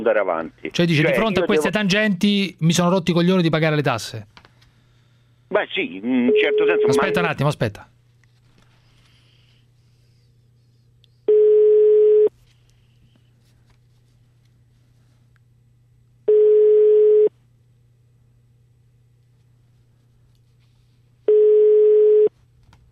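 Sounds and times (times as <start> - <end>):
speech: 0.0 - 4.4, 5.5 - 7.9
faint low hum: 0.0 - 22.9
telephone ringback tone on the phone line: 11.3 - 12.3, 16.3 - 17.3, 21.3 - 22.3.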